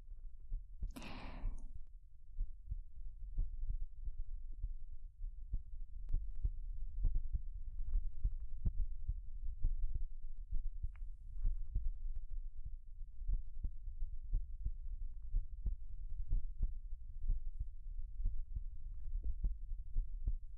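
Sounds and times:
steady heartbeat thumping: 0:00.0 - 0:20.5
brief breathy sound: 0:01.0 - 0:01.7.

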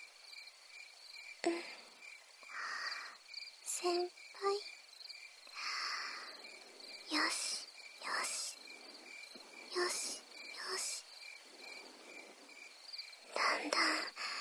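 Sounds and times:
bell crickets chirping: 0:00.0 - 0:14.3
person whispering gently: 0:01.4 - 0:01.8, 0:02.5 - 0:04.6, 0:07.1 - 0:08.6, 0:09.6 - 0:11.1, 0:13.2 - 0:14.3
speech: 0:01.4 - 0:01.8, 0:03.8 - 0:04.7.

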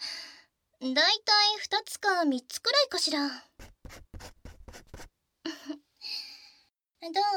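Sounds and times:
speech: 0:00.8 - 0:03.5, 0:07.0 - 0:07.3
pen scratching across paper: 0:03.6 - 0:05.1.

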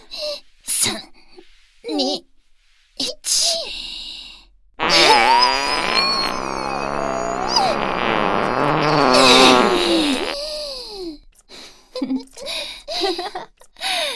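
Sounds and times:
long loud buzzing fart: 0:04.8 - 0:10.4
brief breathy vocal sounds: 0:04.9 - 0:10.4.

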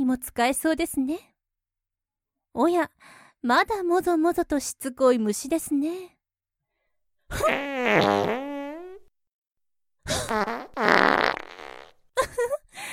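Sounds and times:
speech: 0:00.1 - 0:01.3, 0:02.6 - 0:06.2, 0:07.3 - 0:08.5, 0:10.3 - 0:11.0
long drawn-out buzzing fart with wavering pitch: 0:07.4 - 0:09.1, 0:10.2 - 0:12.0.

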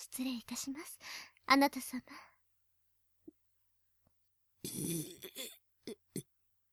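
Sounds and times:
speech: 0:00.0 - 0:02.3, 0:04.6 - 0:06.0
woman's deliberate drawn-out guttural burp: 0:04.6 - 0:06.3.

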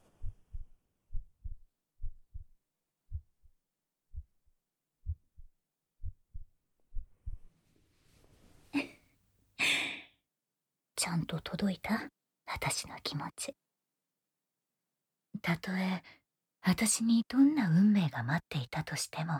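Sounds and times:
heartbeat thumping in lub-dub pairs: 0:00.1 - 0:07.5
speech: 0:11.0 - 0:13.6, 0:15.4 - 0:19.3.

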